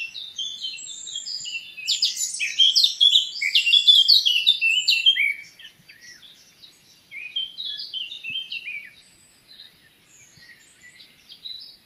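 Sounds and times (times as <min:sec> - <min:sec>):
Eurasian blackcap Sylvia atricapilla singing a fast jumbled warble: 0:00.0 - 0:11.8.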